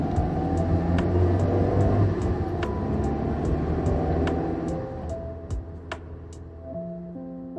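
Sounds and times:
low rumble inside a moving car: 0.0s - 6.7s.

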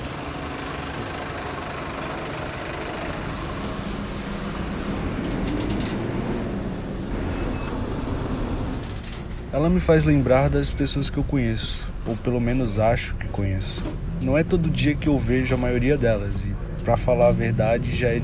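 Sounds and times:
bus air-brake hiss: 0.0s - 9.0s
bus engine rumbling while pulling up: 0.0s - 18.2s
speech: 9.6s - 18.2s.

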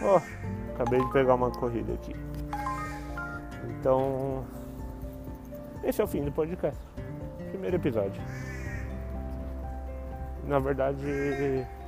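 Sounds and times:
crow cawing: 0.0s - 0.8s, 2.6s - 3.5s, 8.2s - 9.3s, 11.0s - 11.8s
speech: 0.0s - 2.4s, 3.6s - 4.6s, 5.8s - 8.5s, 10.5s - 11.8s.

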